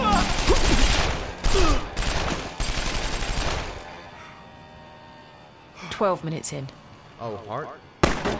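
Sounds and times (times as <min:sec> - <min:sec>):
heavy gunfire bursts: 0:00.1 - 0:03.8, 0:08.0 - 0:08.3
speech: 0:06.0 - 0:08.3.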